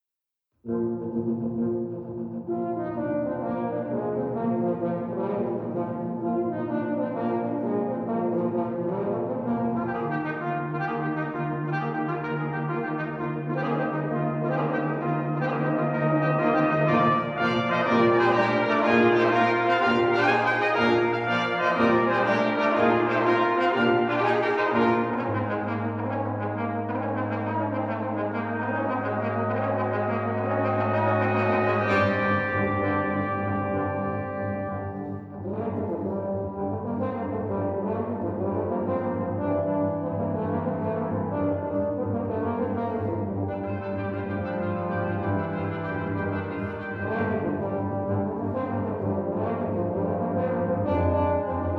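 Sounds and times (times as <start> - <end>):
brass quintet playing a Scottish jig: 0.6 - 51.7.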